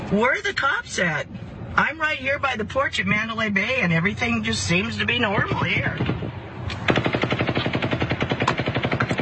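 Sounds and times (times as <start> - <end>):
speech: 0.1 - 7.0
rapid automatic gunfire fired from 32 stories up near Mandalay Bay: 6.9 - 9.2.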